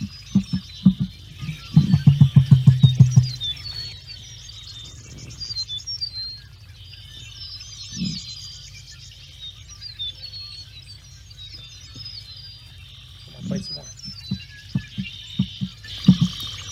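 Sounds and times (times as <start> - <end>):
deep low pulsing call: 0.0 - 4.5, 13.2 - 16.6
small birds chirping and twittering: 0.0 - 16.6.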